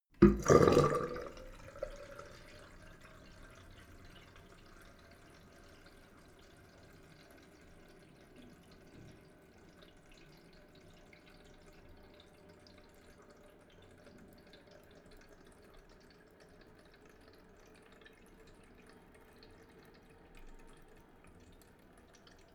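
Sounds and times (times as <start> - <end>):
water draining hard down a sink: 0.1 - 22.5.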